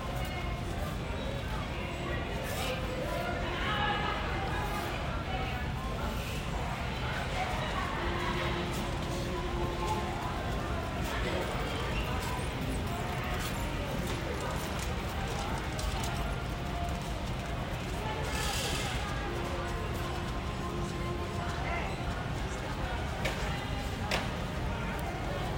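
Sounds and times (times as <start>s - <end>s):
customers and employees chattering in a store: 0.0s - 25.5s
shopping carts and baskets rolling across a store floor: 8.4s - 25.5s.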